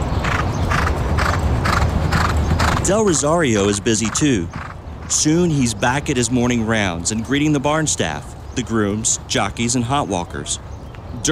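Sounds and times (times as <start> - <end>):
rumbling background: 0.0 - 11.3
thoroughbred horses galloping around a race track under exercise riders: 0.0 - 11.3
speech: 2.9 - 11.3.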